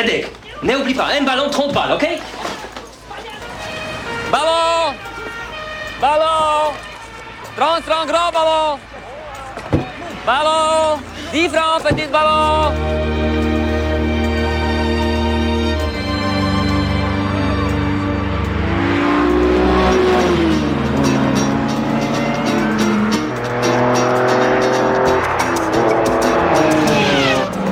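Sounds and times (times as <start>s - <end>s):
speech: 0.0s - 2.5s, 4.3s - 5.1s, 6.0s - 6.9s, 7.6s - 13.6s
Ferrari race car engine accelerating and passing: 12.3s - 27.7s.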